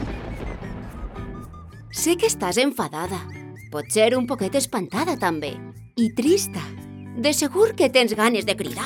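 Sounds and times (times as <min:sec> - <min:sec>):
loud thunderclap: 0:00.0 - 0:01.9
speech: 0:01.9 - 0:08.8.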